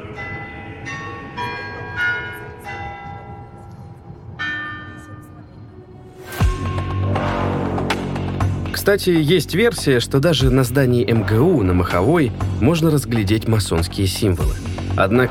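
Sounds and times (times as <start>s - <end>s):
Moscow Kremlin clock tower chimes playing a slow hymn melody: 0.0s - 6.1s
low rumble: 5.6s - 15.3s
speech: 8.8s - 15.3s.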